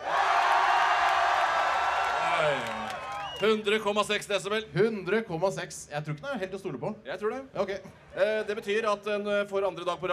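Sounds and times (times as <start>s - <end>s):
festival audience shouting and cheering: 0.0s - 3.8s
speech: 3.4s - 10.1s.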